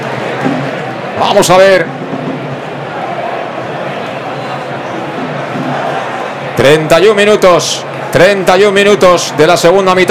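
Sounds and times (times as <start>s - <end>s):
large football stadium crowd cheering during a match in Castellón: 0.0s - 10.1s
speech: 1.2s - 2.0s, 6.6s - 10.1s.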